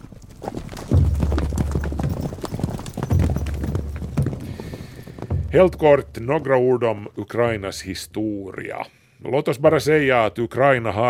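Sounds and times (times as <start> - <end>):
horse hoofbeats clip-clopping at a steady pace: 0.0 - 8.0
speech: 5.5 - 11.0.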